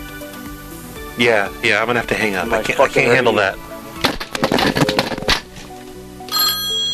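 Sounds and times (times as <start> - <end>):
speech: 1.2 - 3.7
clattery rattling noise: 4.0 - 5.5
payphone metallic bell ringing: 6.3 - 6.9.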